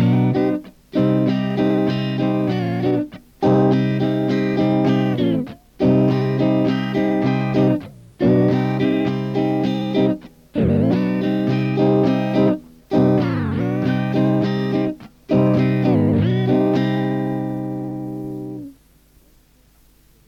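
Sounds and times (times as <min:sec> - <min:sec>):
C minor rhythm backing track with sustained chords: 0:00.0 - 0:20.2.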